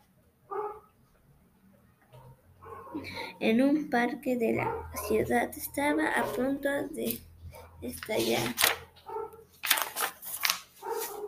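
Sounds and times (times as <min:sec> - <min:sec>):
faint hum: 0:00.0 - 0:10.7
dog barking: 0:00.5 - 0:00.9, 0:02.2 - 0:03.0, 0:04.6 - 0:05.2, 0:06.1 - 0:06.5, 0:09.0 - 0:09.4, 0:10.8 - 0:11.2
speech: 0:03.0 - 0:08.8.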